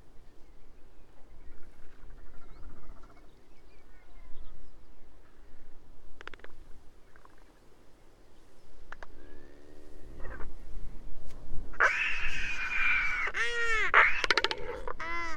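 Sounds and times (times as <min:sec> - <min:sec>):
royal albatrosses braying and wailing: 0:01.4 - 0:03.4, 0:09.0 - 0:10.8, 0:11.7 - 0:15.3
royal albatross clicks: 0:06.2 - 0:06.6, 0:14.1 - 0:15.0.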